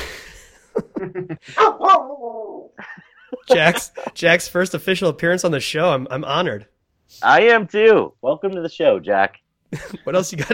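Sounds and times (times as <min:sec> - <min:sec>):
laughter: 0:00.5 - 0:01.8, 0:02.8 - 0:04.3, 0:09.8 - 0:10.5
speech: 0:01.0 - 0:10.5
dog barking in short yips: 0:01.6 - 0:02.2
dog drawn-out wavering howl: 0:01.6 - 0:02.7.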